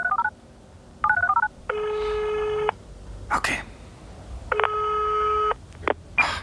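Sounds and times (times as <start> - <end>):
telephone ring tone on a German mobile call: 0.0 - 0.3, 1.0 - 2.7, 4.5 - 5.6.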